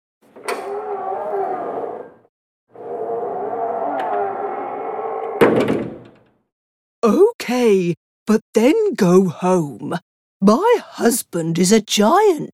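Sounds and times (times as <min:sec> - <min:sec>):
huge door creaking open: 0:00.2 - 0:06.5
speech: 0:07.1 - 0:12.5.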